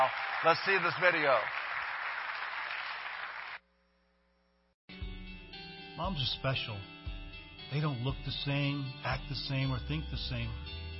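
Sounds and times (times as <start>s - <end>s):
speech: 0.0s - 1.6s, 6.0s - 6.9s, 7.7s - 10.8s
audience applause: 0.0s - 3.6s.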